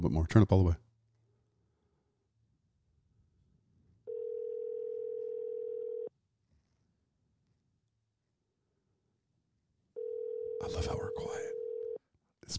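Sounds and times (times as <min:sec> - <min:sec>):
speech: 0:00.0 - 0:00.8
phone ringback tone through a speaker: 0:04.1 - 0:06.1, 0:10.0 - 0:12.0.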